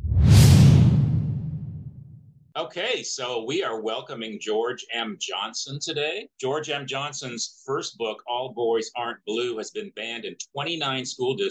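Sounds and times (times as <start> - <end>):
deep rumbling low end: 0.0 - 2.3
whoosh transition sound effect: 0.0 - 2.4
speech: 2.6 - 11.4.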